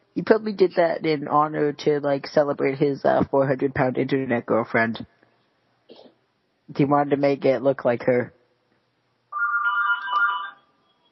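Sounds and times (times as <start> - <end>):
speech: 0.2 - 5.1, 6.7 - 8.4
phone ringtone with electronic melody: 9.3 - 11.1.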